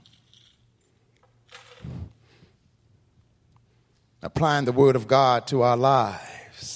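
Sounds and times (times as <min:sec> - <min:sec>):
bunch of keys jangling on a keychain: 0:00.0 - 0:02.2
speech: 0:04.2 - 0:06.7.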